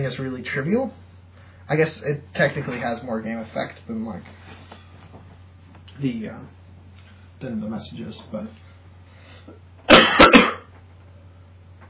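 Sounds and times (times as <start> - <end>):
speech: 0.0 - 1.1, 1.7 - 4.6, 6.0 - 6.6, 7.4 - 8.6
low steady hum: 0.0 - 11.8
person with a lingering cough coughing away from the microphone: 9.9 - 10.7.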